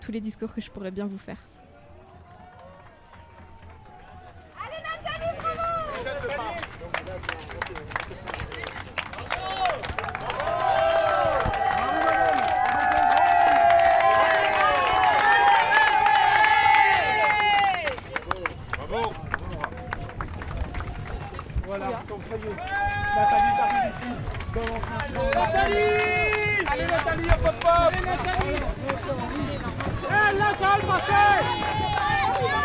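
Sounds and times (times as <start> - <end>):
speech: 0.0 - 1.6
stadium crowd clapping and applauding: 1.8 - 32.6
large stadium crowd shouting and singing: 25.3 - 32.6.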